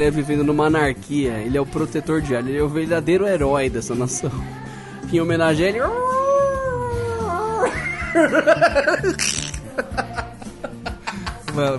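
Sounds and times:
speech: 0:00.0 - 0:06.2, 0:07.6 - 0:10.2, 0:11.6 - 0:11.7
person imitating a Brazilian werewolf howl: 0:05.8 - 0:07.9
choppy laugh-like vocal bursts: 0:07.6 - 0:11.3.

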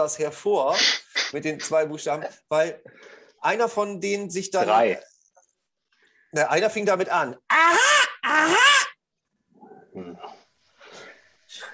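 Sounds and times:
speech: 0:00.0 - 0:05.1, 0:06.3 - 0:08.8
person imitating a crow's caw: 0:07.5 - 0:09.0.

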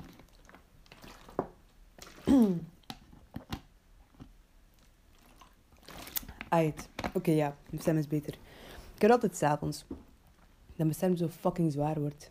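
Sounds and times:
person sipping, gulping and swallowing water: 0:00.0 - 0:06.5
speech: 0:02.3 - 0:02.7, 0:06.5 - 0:10.1, 0:10.8 - 0:12.2.

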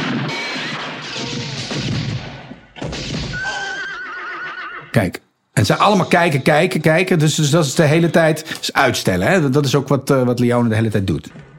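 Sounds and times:
gunfire in a western film scene: 0:00.0 - 0:03.6
horses whinnying: 0:03.3 - 0:05.0
speech: 0:05.0 - 0:11.5.

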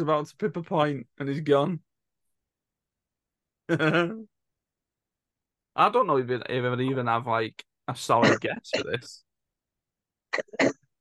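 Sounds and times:
speech: 0:00.0 - 0:01.9, 0:03.7 - 0:04.3, 0:05.8 - 0:09.2, 0:10.3 - 0:10.8
harsh coughs: 0:08.2 - 0:09.0, 0:10.4 - 0:10.8.

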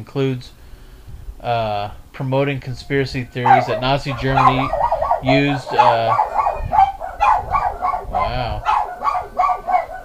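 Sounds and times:
speech: 0:00.0 - 0:00.6, 0:01.4 - 0:06.3
dogs barking in sharp yaps: 0:03.4 - 0:10.0.

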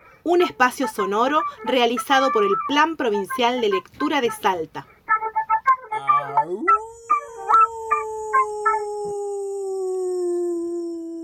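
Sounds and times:
speech: 0:00.2 - 0:04.9
wolf howling: 0:06.0 - 0:11.2.

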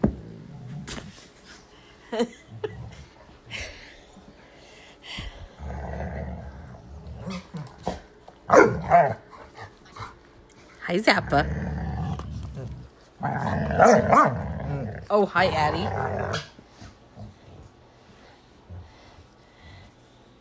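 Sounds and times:
speech: 0:02.1 - 0:02.8, 0:10.9 - 0:11.6, 0:13.8 - 0:14.4, 0:15.1 - 0:16.5
small dog making growly noises: 0:05.2 - 0:10.2, 0:11.1 - 0:17.8.

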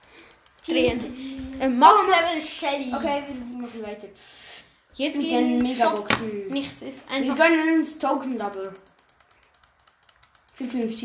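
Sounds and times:
rapid light clicks clicking through video game boxes: 0:00.0 - 0:02.0, 0:08.2 - 0:11.0
speech: 0:00.7 - 0:04.4, 0:05.0 - 0:08.9, 0:10.6 - 0:11.0.

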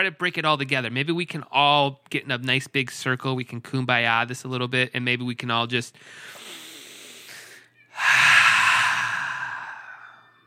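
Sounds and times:
speech: 0:00.0 - 0:06.6
big deep breath: 0:06.0 - 0:10.4.

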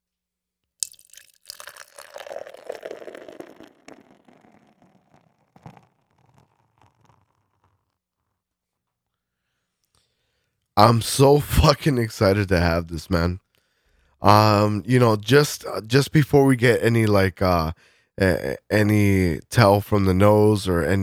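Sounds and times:
IPA beer pouring into a glass: 0:00.8 - 0:07.5
speech: 0:10.8 - 0:13.4, 0:14.2 - 0:21.0.

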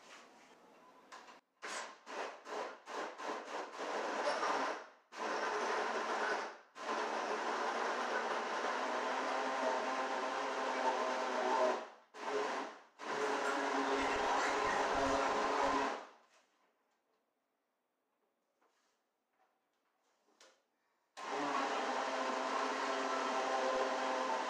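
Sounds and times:
blender motor on chop, grate and smoothie settings: 0:02.1 - 0:16.0, 0:21.2 - 0:24.4.

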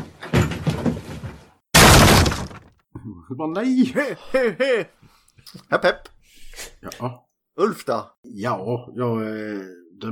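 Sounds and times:
plasterboard in an apartment being smashed apart: 0:00.3 - 0:02.8
speech: 0:03.3 - 0:05.0, 0:05.6 - 0:06.1, 0:06.8 - 0:10.1.

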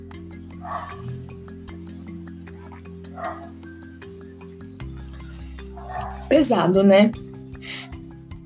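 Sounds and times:
glass clinking: 0:00.2 - 0:06.4
person sipping water from a glass: 0:00.6 - 0:03.5
speech: 0:03.2 - 0:03.6, 0:06.0 - 0:07.9.

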